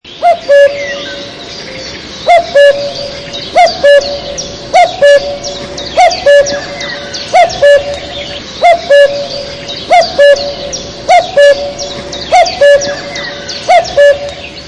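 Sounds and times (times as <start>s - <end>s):
cuckoo calling: 0.1s - 14.6s.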